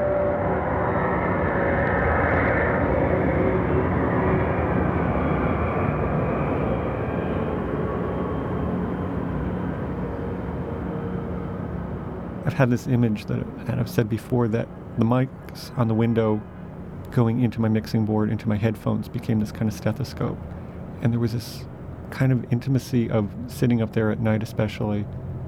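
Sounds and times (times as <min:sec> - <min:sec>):
airplane flying overhead: 0:00.0 - 0:25.4
speech: 0:12.6 - 0:25.2.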